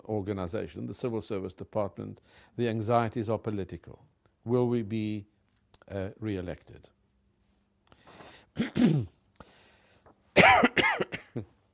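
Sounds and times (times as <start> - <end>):
speech: 0.1 - 5.3, 5.9 - 7.0, 8.6 - 9.2, 10.4 - 11.5
person coughing in a fit: 8.6 - 9.2, 10.4 - 11.5.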